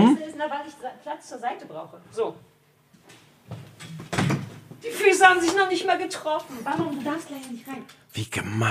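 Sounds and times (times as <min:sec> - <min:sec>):
speech: 0:00.0 - 0:02.5, 0:04.8 - 0:08.7
door being opened: 0:03.5 - 0:04.6.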